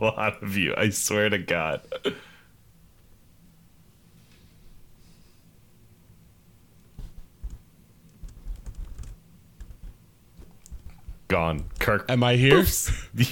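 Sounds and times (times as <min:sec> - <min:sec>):
speech: 0:00.0 - 0:02.3, 0:11.4 - 0:13.3
low hum: 0:00.0 - 0:13.3
typing on a computer keyboard: 0:07.2 - 0:11.8.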